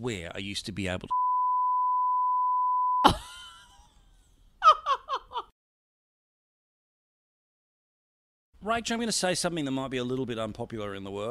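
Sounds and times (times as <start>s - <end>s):
speech: 0.0s - 1.3s, 8.6s - 11.2s
censor bleep tone covering speech: 1.1s - 3.1s
quick giggle-like syllables: 3.0s - 3.9s, 4.6s - 5.5s.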